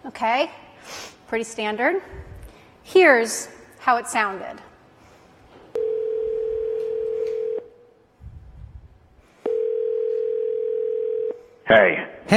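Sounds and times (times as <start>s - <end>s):
speech: 0.0s - 4.7s, 11.7s - 12.3s
telephone dial tone from a phone at a Kinko's store: 5.8s - 7.7s, 9.5s - 11.4s.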